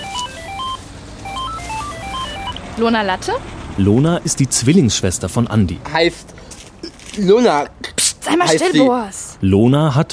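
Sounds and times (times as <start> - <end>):
mobile phone ringtone of bright electronic beeps: 0.0 - 2.8
speech: 2.8 - 6.5, 7.2 - 10.1.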